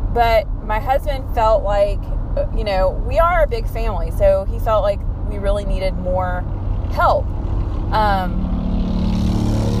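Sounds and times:
speech: 0.2s - 7.4s, 7.9s - 8.4s
motorcycle engine roaring as the rider passes: 6.2s - 9.7s.

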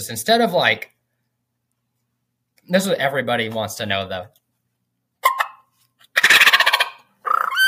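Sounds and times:
speech: 0.0s - 0.9s, 2.7s - 4.4s
turkey gobble made by a person on a diaphragm turkey mouth call: 5.2s - 5.6s, 6.2s - 7.6s.

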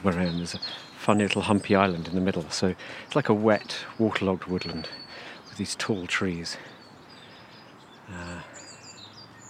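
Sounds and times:
speech: 0.0s - 6.8s, 8.1s - 8.5s
birds chirping in wet woodland: 0.0s - 9.4s
low voice: 8.1s - 8.6s.

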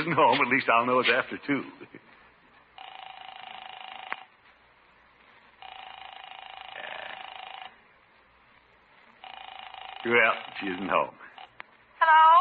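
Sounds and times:
speech: 0.1s - 2.0s, 10.0s - 11.2s
telephone ringing on a call to a home: 2.8s - 4.4s, 5.6s - 7.8s, 9.2s - 11.6s.

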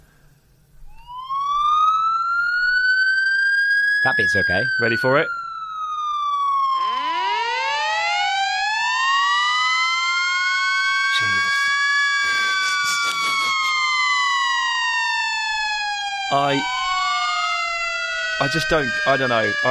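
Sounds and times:
loud fire truck siren wailing: 0.9s - 19.6s
speech: 4.0s - 5.4s, 16.3s - 16.8s, 18.4s - 19.6s.

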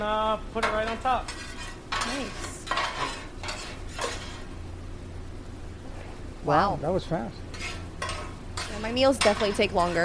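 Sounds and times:
speech: 0.0s - 3.2s, 6.4s - 7.5s, 8.8s - 10.0s
pork sizzling on a hot hibachi grill: 0.0s - 5.7s, 6.4s - 10.0s
metal utensils scraping and clattering while moving meat: 0.6s - 4.5s, 7.5s - 10.0s.

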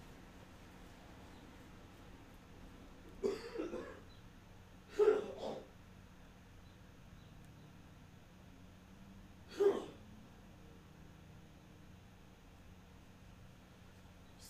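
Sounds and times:
person clearing throat: 3.2s - 4.1s, 4.9s - 5.7s, 9.5s - 10.0s
person coughing: 3.2s - 4.1s, 4.9s - 5.7s, 9.5s - 10.0s.

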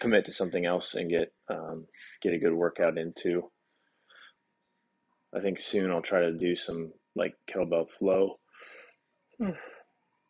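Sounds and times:
speech: 0.0s - 3.6s, 5.3s - 8.4s, 9.4s - 9.7s
person yawning: 9.4s - 9.8s.

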